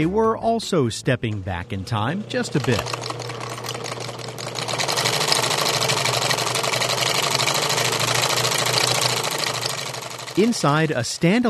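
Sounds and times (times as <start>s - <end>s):
speech: 0.0s - 3.1s, 10.4s - 11.4s
old sewing machines made around World War II running in a commercial building in Phoenix: 1.3s - 11.4s.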